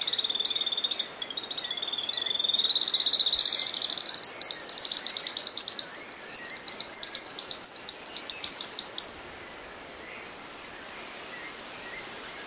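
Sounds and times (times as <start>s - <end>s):
Grey-headed Spinetail Cranioleuca semicinerea giving high notes and ticking calls: 0.0s - 9.2s.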